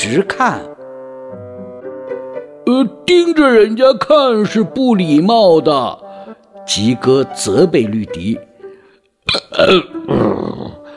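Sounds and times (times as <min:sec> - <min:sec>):
speech: 0:00.0 - 0:00.7, 0:02.8 - 0:06.0, 0:06.7 - 0:08.5, 0:09.3 - 0:10.5
long loud burp from a full stomach: 0:09.3 - 0:10.9.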